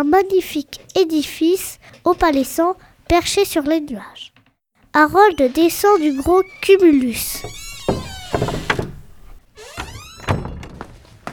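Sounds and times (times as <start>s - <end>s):
speech: 0.0s - 4.3s, 5.0s - 7.6s
door hinge creaking: 5.0s - 10.6s
large wooden double door being pushed open: 5.0s - 11.0s.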